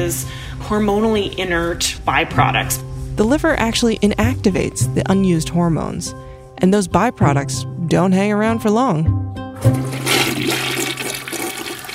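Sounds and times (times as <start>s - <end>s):
speech: 0.0s - 9.8s
toilet flushing: 9.6s - 11.9s.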